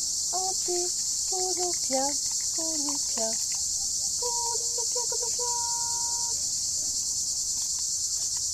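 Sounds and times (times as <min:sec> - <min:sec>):
speech: 0:00.0 - 0:03.5, 0:04.2 - 0:05.9
mosquito whining: 0:00.4 - 0:06.6.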